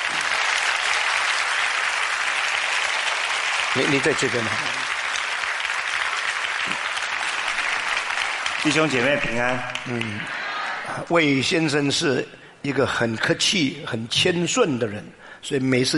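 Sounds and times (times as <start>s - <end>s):
audience applauding: 0.0s - 11.1s
speech: 3.7s - 4.9s, 8.6s - 15.9s.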